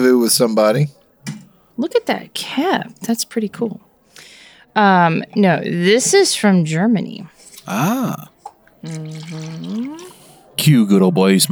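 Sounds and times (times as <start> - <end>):
speech: 0.0 - 3.9, 4.8 - 11.5
beer pouring into a glass: 7.6 - 10.2.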